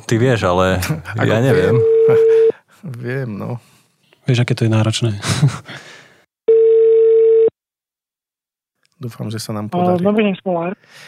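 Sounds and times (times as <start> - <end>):
speech: 0.1 - 5.9, 9.0 - 11.0
laughter: 1.0 - 2.5, 5.2 - 5.7
telephone ringback tone of an outgoing call from a studio: 1.6 - 2.5, 6.5 - 7.5.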